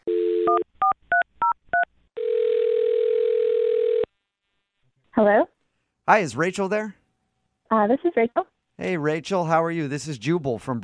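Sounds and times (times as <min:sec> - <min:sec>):
long steady telephone ringing tone on the line: 0:00.1 - 0:00.6, 0:02.2 - 0:04.1
speech: 0:05.2 - 0:05.5, 0:06.1 - 0:07.0, 0:07.8 - 0:10.8.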